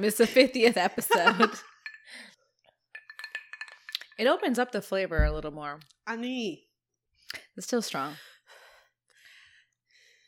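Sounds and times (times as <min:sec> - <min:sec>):
speech: 0:00.0 - 0:02.3, 0:04.2 - 0:06.7, 0:07.6 - 0:08.3
glasses clinking in a toast: 0:01.2 - 0:02.2, 0:03.0 - 0:04.2.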